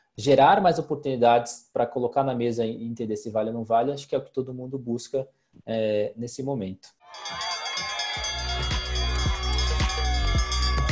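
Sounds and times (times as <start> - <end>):
speech: 0.2 - 7.5
loud roaring crowd cheering: 7.0 - 10.9
last-lap bell clanging: 7.2 - 10.9.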